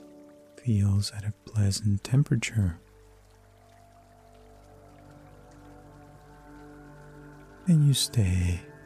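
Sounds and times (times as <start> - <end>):
soft steady rain with droplet patters: 0.0 - 8.8
speech: 0.6 - 2.9, 7.7 - 8.7
sustained low humming drone: 2.7 - 8.8.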